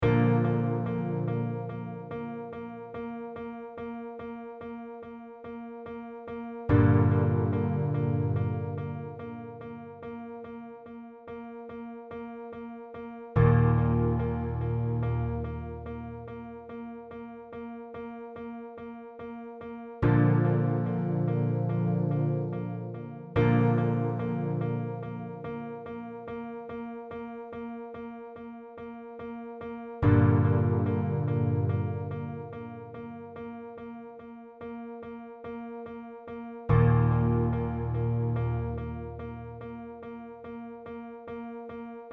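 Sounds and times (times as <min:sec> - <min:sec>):
piano verse: 0:00.0 - 0:42.1.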